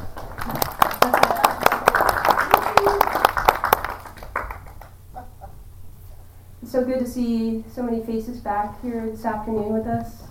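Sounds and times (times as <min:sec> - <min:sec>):
audience applauding: 0:00.0 - 0:05.0
speech: 0:06.8 - 0:10.2.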